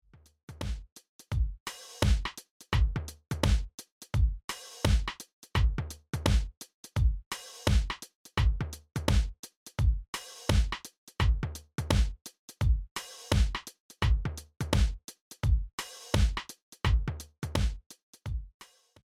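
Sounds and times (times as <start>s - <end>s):
dry drums: 0.5s - 18.5s.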